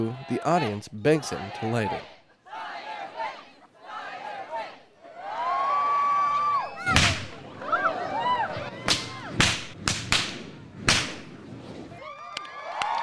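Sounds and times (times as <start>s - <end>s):
speech: 0.0s - 2.2s
lively crowd chattering and cheering at a Renaissance fair: 0.0s - 12.9s
long heavy black bullwhip dripping with gas cracking at a whip show: 6.9s - 7.4s, 8.9s - 11.4s.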